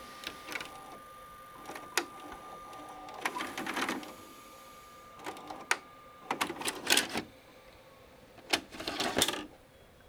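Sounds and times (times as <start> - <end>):
VCR tape ejecting: 0.0 - 9.9.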